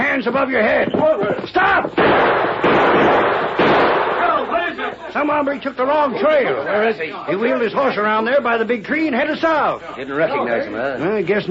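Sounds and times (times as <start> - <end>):
speech: 0.2 - 3.6, 5.2 - 11.4
gunshots on a trail near a camp: 1.9 - 4.7.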